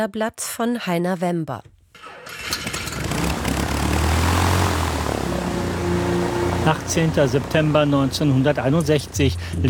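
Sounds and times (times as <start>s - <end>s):
speech: 0.0s - 2.6s, 6.6s - 9.6s
propeller engines of a waiting DC-6 airliner in Leopoldville Congo droning: 2.3s - 9.6s.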